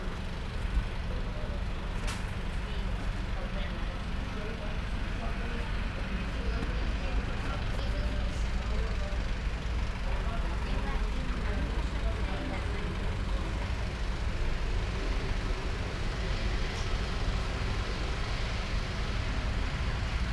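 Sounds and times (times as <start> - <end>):
bus interior ambience at Istanbul airport: 0.0 - 20.3.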